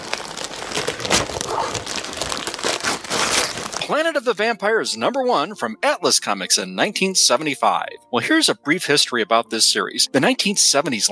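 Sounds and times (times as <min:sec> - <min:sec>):
wrapping paper crinkling and crumpling as a comic book is unwrapped: 0:00.0 - 0:03.9
speech: 0:03.9 - 0:11.1.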